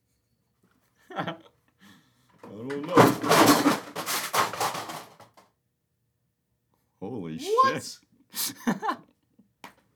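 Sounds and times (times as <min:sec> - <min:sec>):
speech: 0:01.1 - 0:01.4, 0:07.4 - 0:08.9
wooden bookshelf full of books collapsing: 0:02.8 - 0:05.3.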